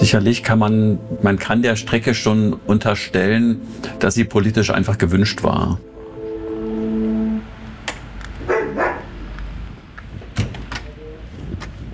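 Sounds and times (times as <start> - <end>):
speech: 0.0 - 5.9
steady buzzing tone: 5.8 - 8.4
dogs barking as a visitor arrives: 8.4 - 9.2.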